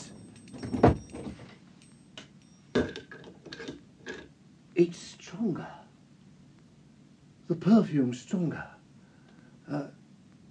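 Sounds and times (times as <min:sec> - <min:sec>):
light rattling of the door: 0:00.0 - 0:04.3
door shutting with a solid thud: 0:00.6 - 0:01.5
speech: 0:02.8 - 0:03.0, 0:04.8 - 0:05.8, 0:07.5 - 0:08.8, 0:09.7 - 0:10.0.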